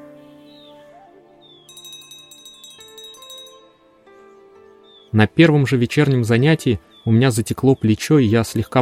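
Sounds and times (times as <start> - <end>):
small hand bell ringing to signal the start of meditation: 1.7 - 3.8
speech: 5.1 - 8.7.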